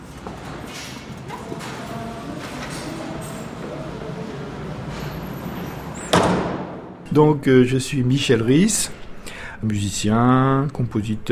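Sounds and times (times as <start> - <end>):
busy ambient noise: 0.0 - 11.3
faint murmuring voices: 1.0 - 5.9
door closing with a thump: 6.0 - 7.0
speech: 7.2 - 9.0, 9.6 - 11.3.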